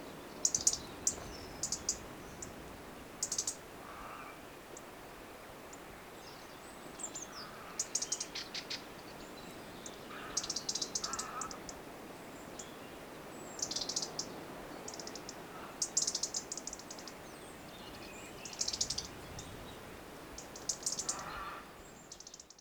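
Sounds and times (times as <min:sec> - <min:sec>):
faint background hiss: 0:00.0 - 0:22.5
European robin giving sharp dry ticking calls: 0:00.3 - 0:02.5, 0:03.2 - 0:04.9, 0:07.0 - 0:09.0, 0:09.8 - 0:11.8, 0:13.6 - 0:19.2, 0:20.4 - 0:22.5.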